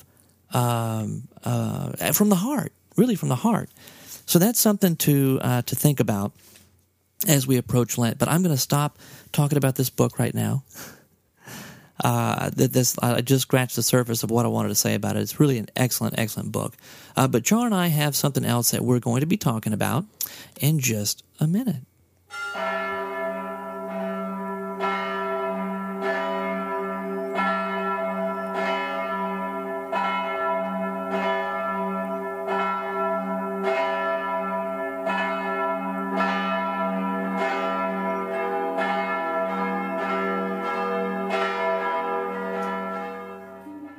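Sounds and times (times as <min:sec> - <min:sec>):
speech: 0:00.5 - 0:06.6, 0:07.2 - 0:22.7
church bell ringing: 0:22.3 - 0:43.9.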